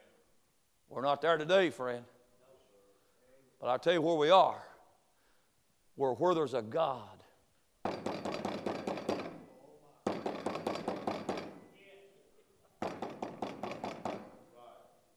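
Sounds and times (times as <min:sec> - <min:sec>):
speech: 0:00.9 - 0:02.2, 0:03.6 - 0:04.7, 0:06.0 - 0:07.2
rapid knocking: 0:07.8 - 0:09.4, 0:10.0 - 0:11.6, 0:12.8 - 0:14.3.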